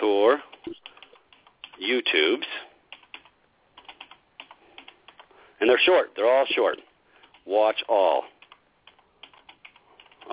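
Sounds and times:
speech: 0.2 - 0.5, 5.9 - 8.3
typing on a computer keyboard: 0.5 - 1.9, 2.9 - 5.3, 7.2 - 7.5, 8.4 - 10.3.

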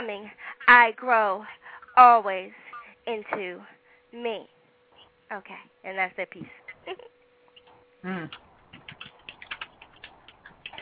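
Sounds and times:
speech: 0.1 - 4.6, 5.3 - 7.1, 8.0 - 8.5
computer keyboard typing: 8.3 - 10.8.

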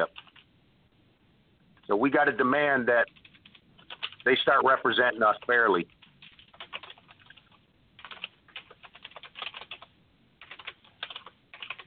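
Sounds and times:
typing on a computer keyboard: 0.0 - 0.5, 3.0 - 4.2, 5.4 - 11.8
speech: 1.9 - 3.2, 4.2 - 6.0.

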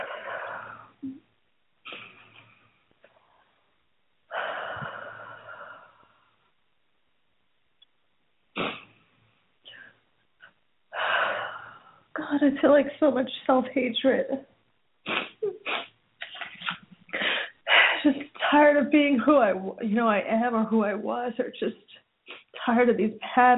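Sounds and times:
deep breaths during a guided breathing exercise: 0.0 - 1.0, 3.0 - 6.6, 9.6 - 12.1, 17.1 - 18.1
speech: 12.4 - 14.5, 18.9 - 22.0, 22.7 - 23.5.

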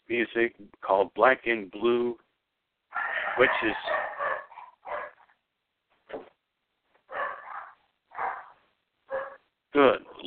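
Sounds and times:
speech: 0.1 - 2.2, 3.4 - 4.1
dogs barking: 2.9 - 5.3, 7.1 - 10.2.

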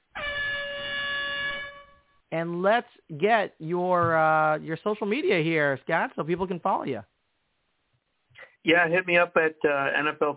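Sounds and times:
air horn blast: 0.2 - 2.0
speech: 2.3 - 7.1, 8.6 - 10.3.

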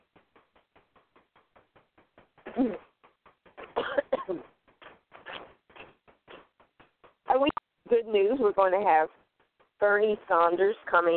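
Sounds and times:
speech: 2.6 - 2.9, 4.3 - 4.5, 8.1 - 9.2, 9.8 - 11.1
person coughing: 3.7 - 4.5.

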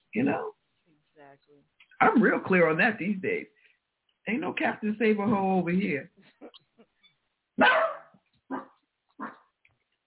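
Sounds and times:
speech: 0.2 - 0.6, 1.4 - 3.6, 4.2 - 6.6, 7.6 - 7.9
dog barking: 7.6 - 9.5.

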